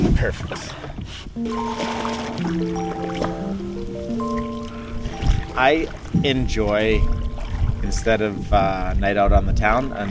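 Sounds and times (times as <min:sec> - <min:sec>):
speech: 0:00.2 - 0:04.5, 0:05.6 - 0:07.2, 0:07.8 - 0:10.0
canoe paddle water swishes and drips on a river: 0:00.5 - 0:09.0
sustained musical tones: 0:01.4 - 0:09.0.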